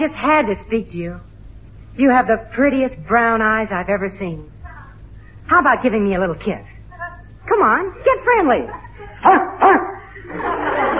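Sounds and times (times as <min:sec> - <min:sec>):
speech: 0:00.0 - 0:01.3, 0:02.0 - 0:04.6, 0:05.5 - 0:06.7, 0:07.6 - 0:10.5
laughter: 0:08.5 - 0:10.9
dog barking: 0:09.2 - 0:10.0.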